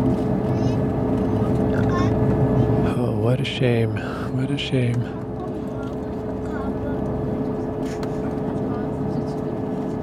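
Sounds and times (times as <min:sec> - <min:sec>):
airplane engine rumble in the cabin on the runway on Jeju island: 0:00.0 - 0:10.0
speech: 0:03.4 - 0:05.2.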